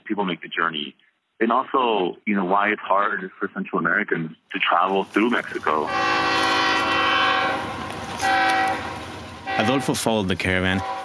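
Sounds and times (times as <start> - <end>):
speech: 0.1 - 6.6, 9.6 - 11.0
rumble of rolling freight rail cars: 5.0 - 11.0
freight train horn blasts in Mexico: 5.7 - 11.0.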